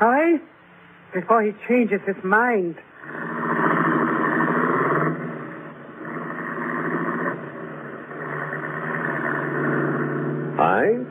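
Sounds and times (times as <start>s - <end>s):
speech: 0.0s - 2.9s, 10.6s - 11.0s
car engine running as car turns around: 3.0s - 11.0s.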